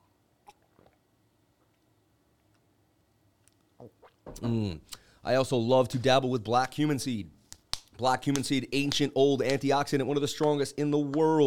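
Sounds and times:
person sipping lemon water: 0:00.4 - 0:02.8, 0:03.4 - 0:04.2
wet slurping gulps: 0:03.7 - 0:04.2
speech: 0:03.8 - 0:07.4, 0:08.0 - 0:11.4.

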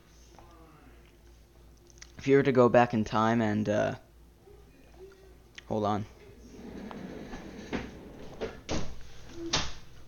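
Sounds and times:
low room hum: 0:00.0 - 0:10.0
speech: 0:02.2 - 0:04.0, 0:05.7 - 0:06.2
door being shut: 0:06.4 - 0:09.8.

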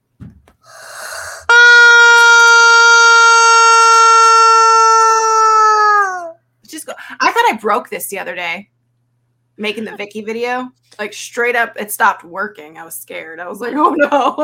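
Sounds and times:
rubber chicken being squeezed, squawking: 0:00.7 - 0:06.3
speech: 0:07.6 - 0:08.7, 0:09.6 - 0:14.4.

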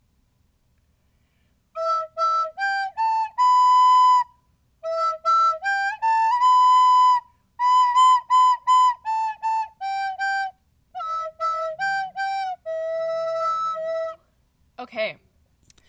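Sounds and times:
simple tune played solo on a recorder: 0:01.8 - 0:14.2
speech: 0:14.9 - 0:15.2.

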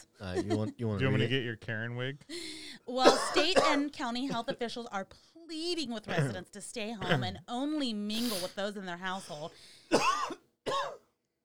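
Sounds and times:
speech: 0:00.2 - 0:10.2
harsh raspy coughs: 0:03.0 - 0:04.6, 0:06.1 - 0:06.4, 0:07.0 - 0:07.4, 0:09.9 - 0:11.1.

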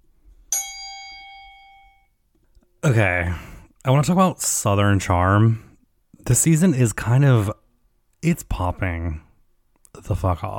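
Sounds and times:
single metallic bell struck: 0:00.5 - 0:02.2
speech: 0:02.8 - 0:05.7, 0:06.3 - 0:07.5, 0:08.2 - 0:09.3, 0:10.0 - 0:10.5.

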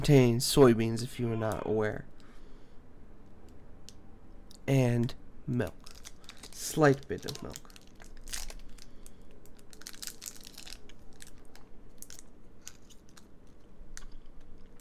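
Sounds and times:
speech: 0:00.0 - 0:02.1, 0:04.7 - 0:05.8, 0:06.6 - 0:07.7
pineapple chewy fruit candy wrapper rustling and tearing: 0:05.7 - 0:14.7.

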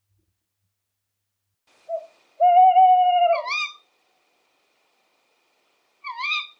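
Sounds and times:
male Tawny owl hooting in Bortziriak, Navarra, Spain: 0:01.9 - 0:03.9, 0:06.0 - 0:06.5.

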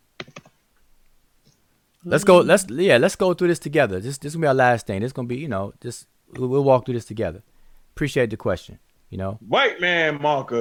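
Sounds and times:
typing on a computer keyboard: 0:00.2 - 0:00.6
speech: 0:02.0 - 0:10.5.

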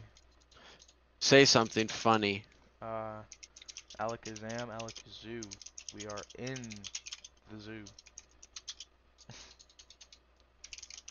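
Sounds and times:
typing on a computer keyboard: 0:00.0 - 0:01.0, 0:03.3 - 0:11.1
speech: 0:01.2 - 0:08.0.

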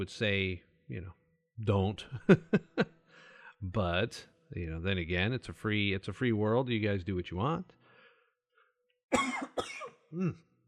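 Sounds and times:
speech: 0:00.0 - 0:02.9, 0:03.6 - 0:07.8, 0:09.1 - 0:10.5
laughter: 0:02.0 - 0:03.0
person coughing: 0:09.1 - 0:10.4
throat clearing: 0:09.2 - 0:10.5.

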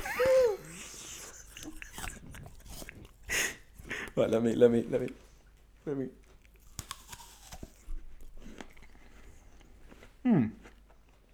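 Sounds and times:
person humming: 0:00.0 - 0:00.8
crunchy bite into an apple: 0:00.0 - 0:04.2, 0:06.4 - 0:10.8
wet chewing crunches of an apple: 0:00.0 - 0:05.4, 0:06.2 - 0:11.3
speech: 0:04.2 - 0:06.2.

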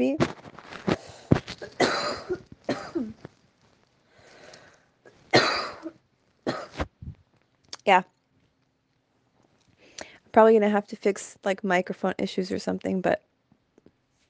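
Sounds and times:
harsh coughing: 0:01.6 - 0:03.2, 0:05.3 - 0:05.9, 0:06.5 - 0:06.8
breathy rasps: 0:04.1 - 0:05.2
speech: 0:07.9 - 0:08.1, 0:10.4 - 0:13.3.

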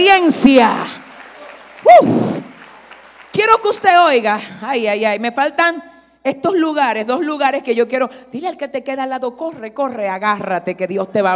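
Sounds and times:
speech: 0:00.0 - 0:01.0, 0:01.9 - 0:02.4, 0:03.4 - 0:11.3
crowd clapping: 0:00.0 - 0:04.2
crowd cheering: 0:00.6 - 0:03.7.

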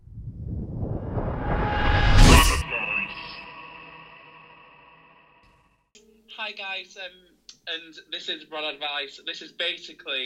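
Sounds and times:
sound-effect sting with bright burst: 0:00.7 - 0:05.4
speech: 0:06.4 - 0:10.2.

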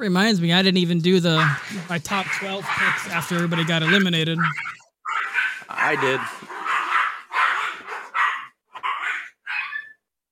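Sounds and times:
speech: 0:00.0 - 0:04.8, 0:05.7 - 0:06.4
puppy yapping: 0:01.4 - 0:10.0.

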